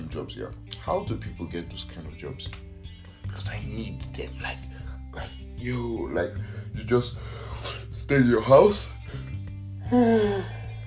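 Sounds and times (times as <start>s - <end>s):
speech: 0.2s - 2.7s, 3.3s - 10.6s
person yawning with a voiced groan: 9.8s - 10.6s.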